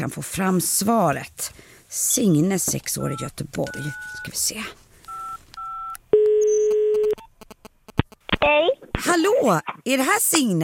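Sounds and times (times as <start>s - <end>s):
speech: 0.0s - 4.8s, 9.2s - 10.6s
two-pitch telephone dial beeps: 2.9s - 4.4s, 5.1s - 7.6s
steady telephone ringback tone: 3.0s - 4.4s, 5.1s - 7.2s.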